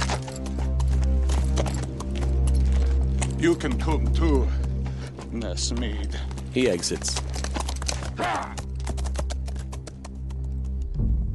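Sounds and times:
several horses galloping across grass: 0.0s - 10.9s
speech: 3.4s - 4.6s, 5.3s - 7.3s.

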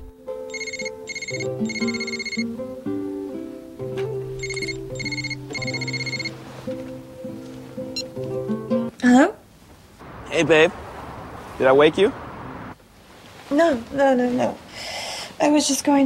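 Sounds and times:
mobile phone ringtone: 0.5s - 2.5s, 4.4s - 6.4s
speech: 1.3s - 2.9s, 10.4s - 10.8s, 11.6s - 12.2s, 13.6s - 14.6s, 15.4s - 16.0s.

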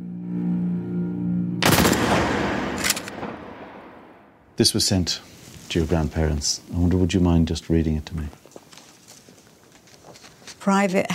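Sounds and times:
low sustained tone: 0.0s - 1.7s
firing-squad volley of gunshots, reconstructed: 1.6s - 4.2s
speech: 4.6s - 8.4s, 10.6s - 11.1s.

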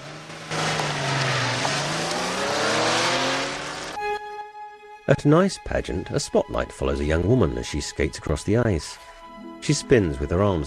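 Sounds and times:
car engine revving as the vehicle drives away: 0.0s - 4.2s
speech: 5.1s - 10.6s.

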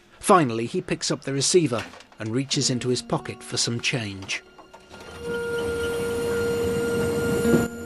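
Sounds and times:
speech: 0.3s - 4.6s
diesel train pulling into a station: 2.2s - 7.8s
sustained whining tone of a diesel train: 4.4s - 7.8s.

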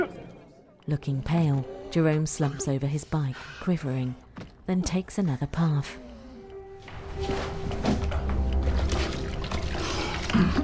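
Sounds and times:
speech: 0.9s - 6.0s, 7.2s - 7.6s, 10.3s - 10.6s
water splashed onto face at sink: 6.9s - 10.6s.

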